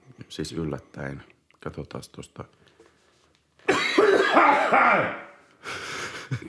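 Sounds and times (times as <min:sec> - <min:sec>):
speech: 0:00.3 - 0:02.7, 0:04.3 - 0:05.8
person hacking coughs: 0:03.7 - 0:05.4.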